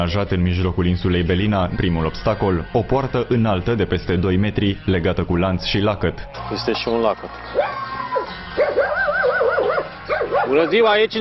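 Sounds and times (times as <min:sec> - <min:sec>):
speech: 0:00.0 - 0:07.9, 0:10.5 - 0:11.1
guard dog barking behind a chained padlocked gate at an estate on Belina island: 0:07.5 - 0:10.8.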